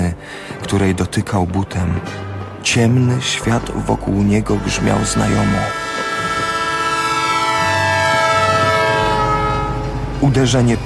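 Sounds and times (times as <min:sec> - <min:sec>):
speech: 0:00.7 - 0:05.8, 0:10.3 - 0:10.8
locomotive whistle of an approaching train: 0:03.2 - 0:10.8.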